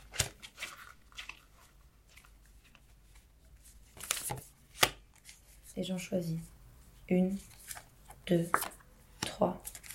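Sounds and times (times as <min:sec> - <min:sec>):
tarot cards rustling as pulled from a box: 0:00.0 - 0:05.8, 0:07.4 - 0:09.9
speech: 0:05.8 - 0:07.6, 0:08.3 - 0:08.7, 0:09.4 - 0:09.6.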